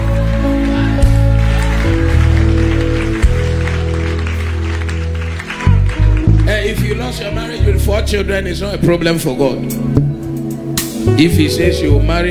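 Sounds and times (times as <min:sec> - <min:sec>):
crowd at a sermon clapping: 0:00.0 - 0:07.7
speech: 0:08.1 - 0:10.1, 0:11.1 - 0:12.2.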